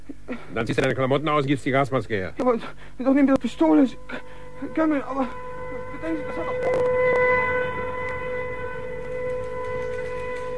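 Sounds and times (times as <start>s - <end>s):
speech: 0.3s - 6.9s
air raid siren wailing: 3.2s - 10.5s.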